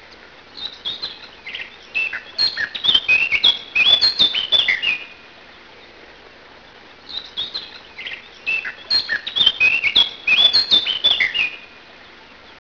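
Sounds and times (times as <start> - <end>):
Eurasian blackcap warbling song: 0.6 - 5.2, 7.1 - 11.7.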